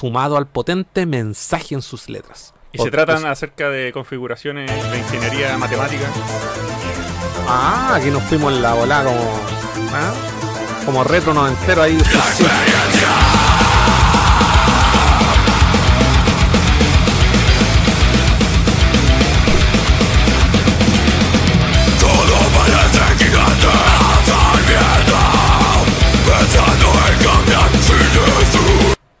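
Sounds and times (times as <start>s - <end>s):
speech: 0.0s - 13.4s
distorted heavy metal guitars: 4.7s - 29.0s
harsh screamed heavy metal vocals: 12.0s - 17.2s, 22.0s - 29.0s
pounding heavy metal drums: 12.0s - 29.0s.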